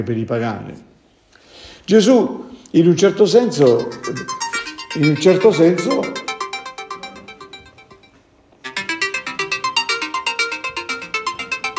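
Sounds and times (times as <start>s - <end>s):
speech: 0.0s - 0.9s, 1.8s - 6.2s
mobile phone ringtone playing a repeating electronic melody: 3.4s - 11.7s.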